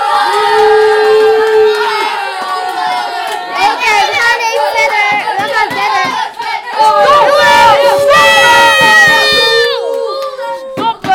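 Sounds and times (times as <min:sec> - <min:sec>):
crowd of people shouting and yelling in support: 0:00.0 - 0:11.1.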